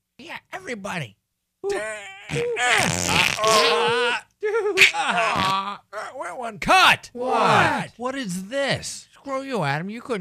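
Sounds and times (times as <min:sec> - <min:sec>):
speech: 0:00.2 - 0:10.2
voice imitating a fart: 0:01.7 - 0:04.2, 0:04.8 - 0:05.8.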